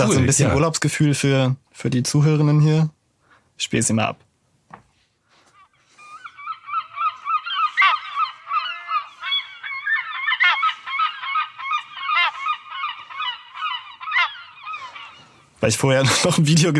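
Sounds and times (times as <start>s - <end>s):
laughter: 0.0s - 0.6s
herring gulls calling: 0.0s - 0.7s, 5.4s - 16.7s
speech: 0.0s - 3.0s, 3.6s - 4.3s, 15.7s - 16.7s.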